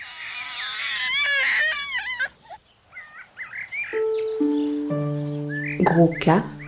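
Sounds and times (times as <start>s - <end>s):
newborn baby crying: 0.0s - 2.5s
chirpy squeaks: 0.0s - 6.6s
sustained musical tones stepping downward: 4.0s - 6.6s
speech: 5.8s - 6.6s.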